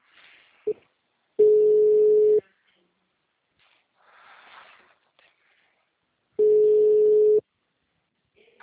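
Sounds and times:
telephone line tone after a call drops: 0:01.4 - 0:02.4, 0:06.4 - 0:07.4.

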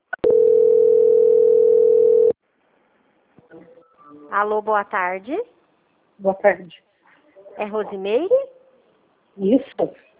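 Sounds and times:
telephone call-transfer tone: 0:00.2 - 0:02.4
speech: 0:04.4 - 0:05.6, 0:06.2 - 0:06.9, 0:07.6 - 0:08.5, 0:09.4 - 0:10.1.

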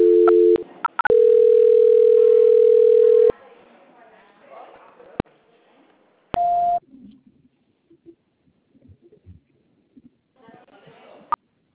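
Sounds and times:
telephone line tones during a call transfer: 0:00.0 - 0:03.3.

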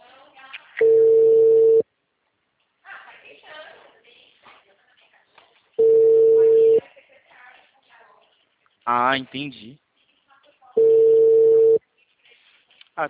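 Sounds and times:
ringback tones of an unanswered phone call: 0:00.8 - 0:01.8, 0:05.8 - 0:06.8, 0:10.8 - 0:11.8
speech: 0:08.9 - 0:09.8.

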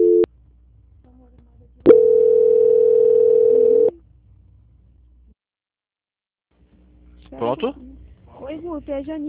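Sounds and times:
telephone line tones during a call transfer: 0:01.9 - 0:03.9
speech: 0:08.8 - 0:09.2.

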